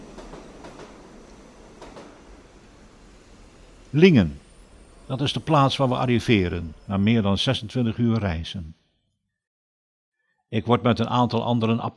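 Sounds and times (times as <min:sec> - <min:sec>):
train wheels clicking over rail joints: 0:00.0 - 0:03.8
train rumbling along the tracks through Germany at night: 0:00.0 - 0:07.9
speech: 0:03.9 - 0:04.4, 0:05.1 - 0:08.8, 0:10.5 - 0:11.9.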